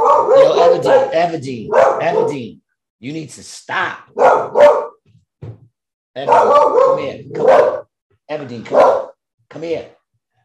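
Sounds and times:
dog barking and yowling: 0:00.0 - 0:02.4, 0:04.1 - 0:05.0, 0:06.2 - 0:07.9, 0:08.7 - 0:09.2
speech: 0:00.7 - 0:04.8, 0:06.2 - 0:10.0.

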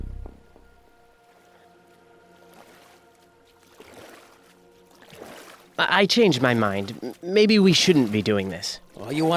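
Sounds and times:
oars dipping and splashing through water: 0:01.1 - 0:09.3
speech: 0:05.8 - 0:09.3.

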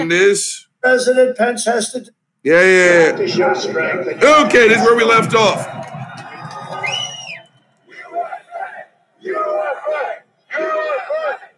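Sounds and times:
speech: 0:00.0 - 0:05.9
crowd screaming and chanting: 0:03.0 - 0:11.5
people shouting: 0:03.6 - 0:11.5
shrill whistle: 0:06.0 - 0:08.2.

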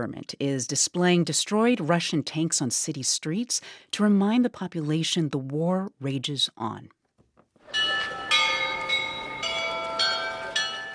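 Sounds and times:
speech: 0:00.0 - 0:07.0
monastery church bells chiming the hour in Kyiv: 0:07.6 - 0:10.9.

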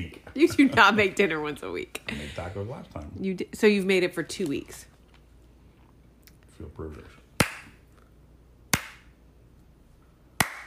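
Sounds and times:
speech: 0:00.0 - 0:04.9, 0:06.6 - 0:07.2
one person clapping slowly: 0:08.7 - 0:09.1, 0:10.4 - 0:10.6.

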